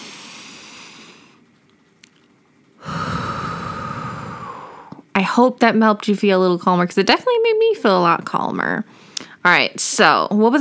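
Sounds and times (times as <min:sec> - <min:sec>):
slow deep breathing in through the nose and out through the mouth: 0:00.0 - 0:01.4, 0:02.8 - 0:05.1
speech: 0:05.2 - 0:10.5.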